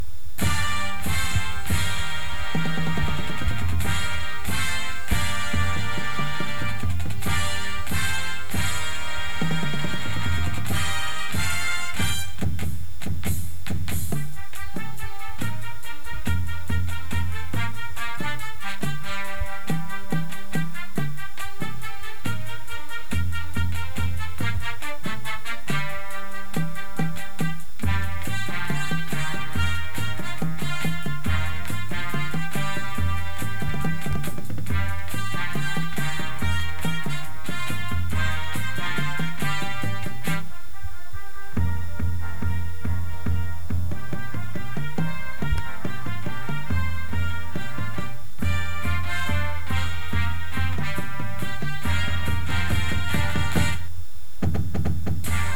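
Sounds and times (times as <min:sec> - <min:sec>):
bass with music: 0:00.0 - 0:55.5.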